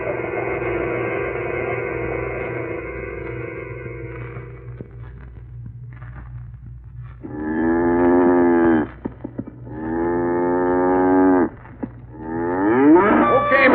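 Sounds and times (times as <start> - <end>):
low steady hum: 0.0 - 13.7
cow mooing: 7.2 - 9.0, 9.7 - 13.7.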